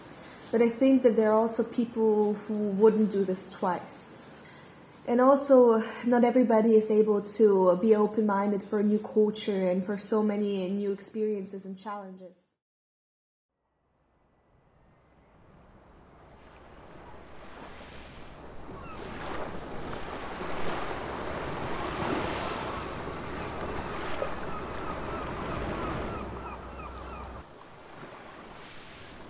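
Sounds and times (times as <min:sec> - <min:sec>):
speech: 0:00.5 - 0:04.2, 0:05.0 - 0:12.5
ocean surf rolling and washing: 0:15.4 - 0:29.2.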